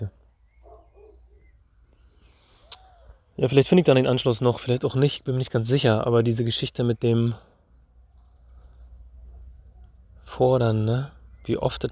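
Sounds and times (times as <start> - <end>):
faint noise: 0.0 - 11.9
pigeon cooing outdoors: 0.6 - 1.6, 2.6 - 3.2
speech: 3.4 - 7.5, 10.4 - 11.9.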